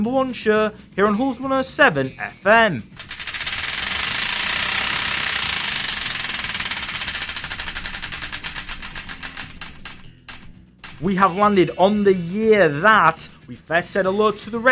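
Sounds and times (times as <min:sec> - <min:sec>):
speech: 0:00.0 - 0:03.0, 0:11.0 - 0:14.7
prize wheel spinning with its pointer clicking: 0:03.0 - 0:12.0.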